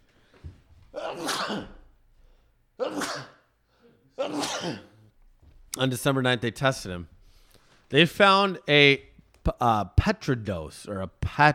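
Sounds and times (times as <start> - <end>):
person sneezing: 0.9 - 1.9, 2.8 - 5.1
speech: 1.1 - 1.8, 4.3 - 4.9, 5.8 - 7.2, 7.9 - 11.5.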